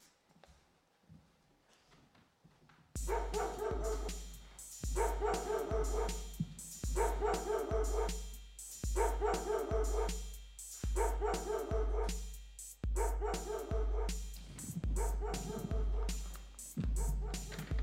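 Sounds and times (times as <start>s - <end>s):
dog barking behind a door: 3.1s - 4.2s, 5.0s - 6.3s, 7.0s - 8.2s, 9.0s - 10.2s, 11.0s - 12.2s, 13.0s - 16.2s, 16.8s - 17.7s.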